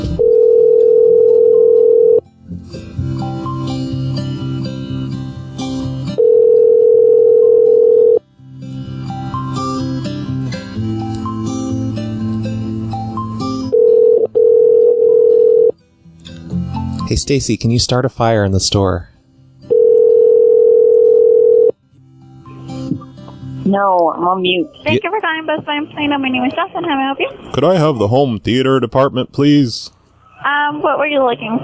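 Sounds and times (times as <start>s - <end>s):
two-second electronic telephone ring tones down a phone line: 0.2s - 2.2s, 6.2s - 8.2s, 13.7s - 15.7s, 19.7s - 21.7s
music playing down a phone line: 2.4s - 6.2s, 8.6s - 14.3s, 22.2s - 25.2s
speech: 17.2s - 19.2s, 23.7s - 31.6s.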